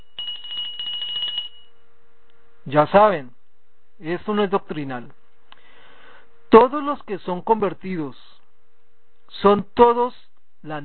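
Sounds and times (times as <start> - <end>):
hand bell rung during a sermon: 0.0 - 1.7
speech: 2.6 - 3.4, 4.0 - 5.2, 6.5 - 8.2, 9.3 - 10.8.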